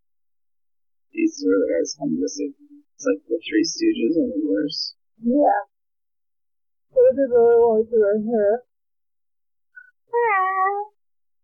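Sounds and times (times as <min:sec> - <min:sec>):
speech: 0:01.3 - 0:05.7, 0:06.9 - 0:08.7
cat chirp: 0:09.8 - 0:11.0
cat meowing: 0:10.1 - 0:11.0.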